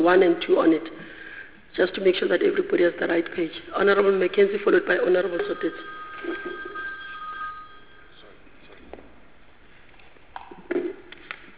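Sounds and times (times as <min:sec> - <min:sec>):
speech: 0:00.0 - 0:01.0, 0:01.8 - 0:06.6
telephone ringing during a formal meeting: 0:04.6 - 0:08.5.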